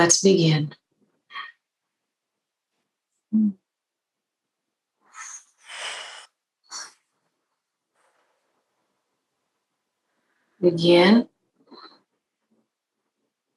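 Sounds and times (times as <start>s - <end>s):
speech: 0.0s - 0.8s, 3.3s - 3.6s, 10.6s - 11.3s
breathing-exercise inhale through the nose and strong exhale through the lips: 5.0s - 7.0s
short faint sniffs: 5.1s - 7.0s.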